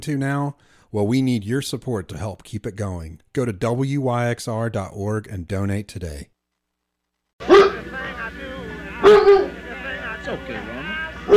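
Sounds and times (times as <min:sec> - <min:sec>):
speech: 0:00.0 - 0:06.3, 0:09.1 - 0:09.6, 0:10.3 - 0:11.3
police-trained Doberman Pinscher barking: 0:07.4 - 0:07.8, 0:09.0 - 0:09.6.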